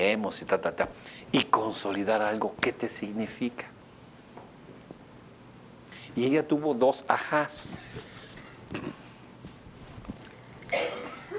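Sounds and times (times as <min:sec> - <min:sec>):
speech: 0:00.1 - 0:03.8, 0:06.2 - 0:08.1, 0:08.7 - 0:09.0
person coughing: 0:08.4 - 0:09.1, 0:10.7 - 0:11.3.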